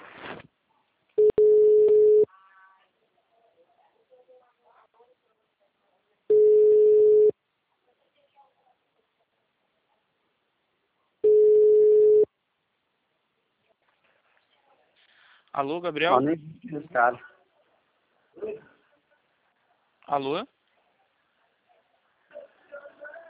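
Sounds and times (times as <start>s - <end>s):
telephone ringback tone on a call to a client: 1.2s - 2.3s, 6.3s - 7.3s, 11.2s - 12.3s
speech: 15.6s - 17.3s, 20.1s - 20.6s.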